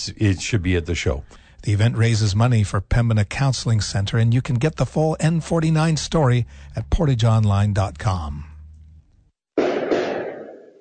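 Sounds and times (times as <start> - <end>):
speech: 0.0 - 8.5
outdoor fireworks bangs with rumble: 9.6 - 10.8.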